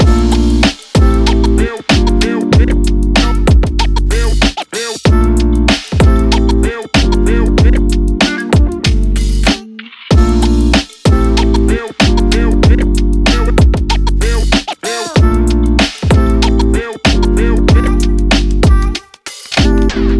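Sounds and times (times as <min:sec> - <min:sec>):
urban hip hop music: 0:00.0 - 0:20.1.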